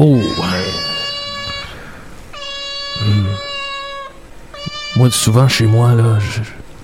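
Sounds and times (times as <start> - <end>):
speech: 0.0 - 0.4, 5.0 - 6.6
low voices murmuring: 0.0 - 6.6
recording of cats meowing played at home: 0.0 - 6.6.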